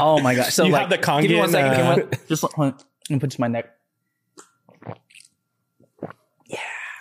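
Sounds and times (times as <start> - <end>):
speech: 0.0 - 3.8, 4.8 - 5.0
person sipping water: 4.4 - 6.3.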